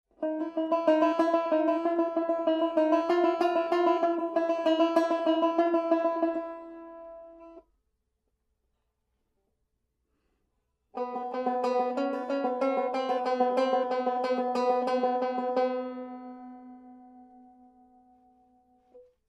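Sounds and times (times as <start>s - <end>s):
banjo playing quarter-tone melodies: 0.1s - 7.6s, 11.0s - 17.9s.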